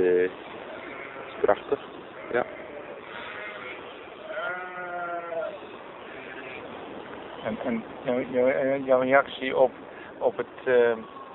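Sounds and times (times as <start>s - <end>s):
outdoor background: 0.0s - 11.3s
sheep and young lambs bleating: 0.6s - 6.7s
speech: 1.4s - 2.6s, 7.6s - 11.2s.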